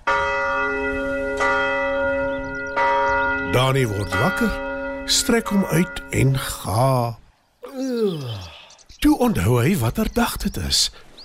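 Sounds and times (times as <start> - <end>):
large town hall tower bell ringing: 0.0 - 7.0
speech: 3.6 - 7.2, 8.0 - 11.1.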